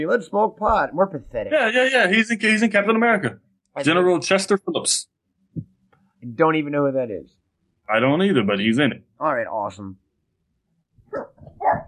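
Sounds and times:
speech: 0:00.0 - 0:10.0
dog barking: 0:11.1 - 0:11.8.

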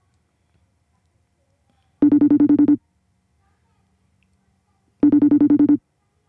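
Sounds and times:
phone ringing with warbling trill: 0:02.0 - 0:02.8, 0:05.0 - 0:05.8.

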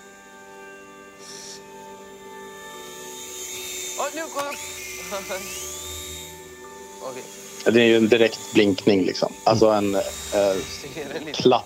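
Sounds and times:
high-pitched electric motor whine of a radio-controlled toy helicopter: 0:00.0 - 0:11.6
speech: 0:04.0 - 0:05.8, 0:07.0 - 0:11.6.

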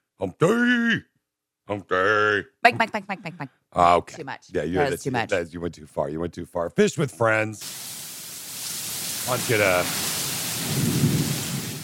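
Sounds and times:
speech: 0:00.2 - 0:01.1, 0:01.7 - 0:08.0, 0:09.3 - 0:11.0
steady rain: 0:07.6 - 0:11.8
thunder rumbling: 0:09.1 - 0:11.8.

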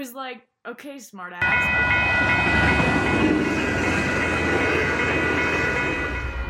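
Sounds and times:
speech: 0:00.0 - 0:04.9
faint rhythmic rattling of a train: 0:01.4 - 0:06.4
train rolling along rails: 0:01.4 - 0:06.4.

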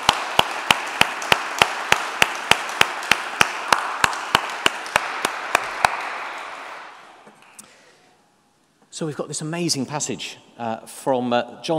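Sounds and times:
roomful of people applauding: 0:00.0 - 0:07.2
speech: 0:09.0 - 0:11.7.

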